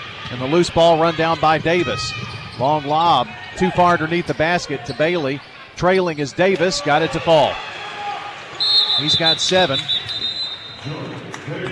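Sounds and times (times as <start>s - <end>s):
noisy arena crowd: 0.0s - 11.7s
scattered court sounds: 0.0s - 11.7s
speech: 0.3s - 7.7s, 9.0s - 10.2s, 10.8s - 11.7s
shrill referee's whistle blown for timeout: 8.6s - 10.9s.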